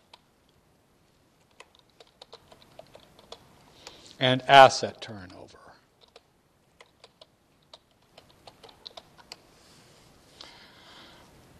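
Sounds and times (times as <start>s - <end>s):
quiet hiss: 0.0s - 11.5s
typing on a computer keyboard: 1.4s - 4.0s, 6.0s - 9.4s
speech: 4.2s - 5.6s.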